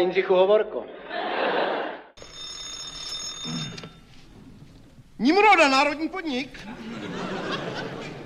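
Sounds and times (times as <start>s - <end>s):
speech: 0.0s - 1.3s, 5.2s - 7.6s
laughter: 1.0s - 2.1s, 6.6s - 8.2s
telephone bell ringing with a high metallic tone: 2.2s - 4.2s.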